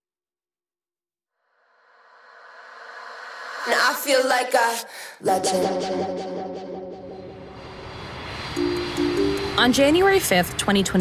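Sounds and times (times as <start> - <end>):
speech: 3.6 - 6.7, 9.6 - 10.9
airplane engine roaring at airport: 6.2 - 10.9.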